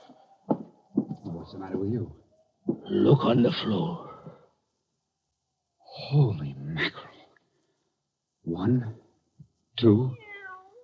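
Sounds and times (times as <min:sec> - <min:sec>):
speech: 0:01.5 - 0:02.2, 0:02.9 - 0:04.1, 0:06.1 - 0:07.0, 0:08.5 - 0:09.0, 0:09.8 - 0:10.2
cat meowing: 0:10.1 - 0:10.8.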